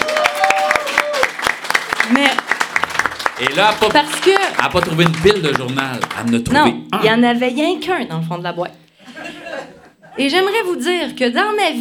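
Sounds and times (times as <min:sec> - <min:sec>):
people cheering: 0:00.0 - 0:06.4
room of people applauding: 0:00.0 - 0:06.6
speech: 0:03.4 - 0:08.8, 0:10.2 - 0:11.7
laughter: 0:09.0 - 0:10.2.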